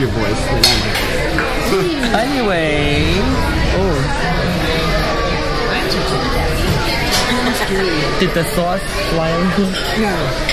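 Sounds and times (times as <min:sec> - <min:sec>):
speech: 0:00.0 - 0:01.1, 0:01.7 - 0:04.6, 0:07.7 - 0:10.5
dense restaurant crowd chatter: 0:00.0 - 0:10.5
heavy rain outside a restaurant: 0:02.5 - 0:08.1.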